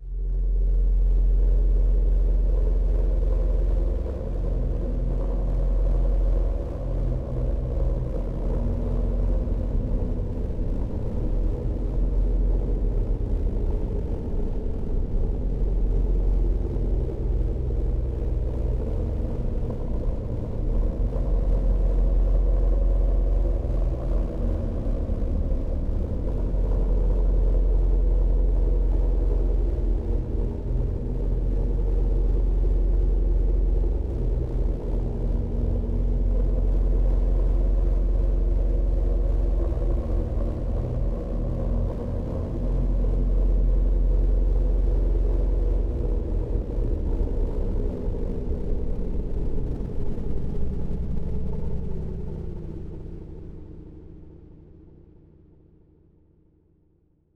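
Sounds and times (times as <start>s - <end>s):
dark ambient music: 0.1s - 55.1s.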